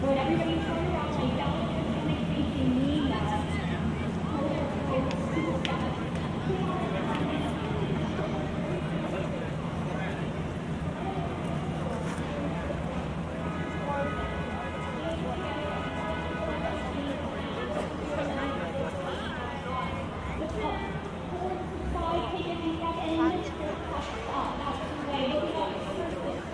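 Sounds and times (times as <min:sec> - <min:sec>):
constant low rumble of traffic: 0:00.0 - 0:26.5
many overlapping voices chattering on busy city streets: 0:00.0 - 0:26.5.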